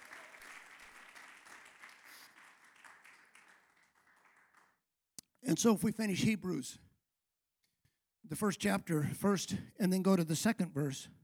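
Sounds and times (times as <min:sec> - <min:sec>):
audience applauding: 0:00.0 - 0:04.8
speech: 0:05.5 - 0:06.9, 0:08.3 - 0:11.2.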